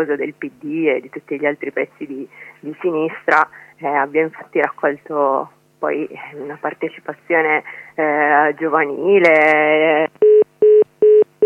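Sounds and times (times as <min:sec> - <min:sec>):
speech: 0:00.0 - 0:10.2
telephone touch-tone dialing beeps while redialing a dropped line: 0:10.2 - 0:11.4.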